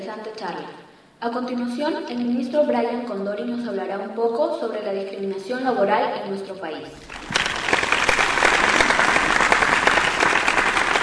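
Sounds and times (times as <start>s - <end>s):
speech: 0.1s - 7.3s
sustained audience applause: 6.9s - 11.0s.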